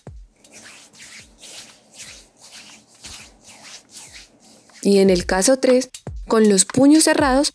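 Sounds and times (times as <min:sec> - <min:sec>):
hands rubbing together imitating pouring sand: 0:00.4 - 0:05.8
speech: 0:04.8 - 0:07.5.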